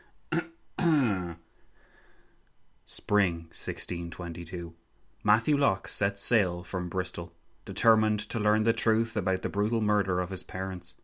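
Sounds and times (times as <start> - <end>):
deliberately dramatic throat clearing: 0.3 - 1.5
speech: 3.1 - 11.0.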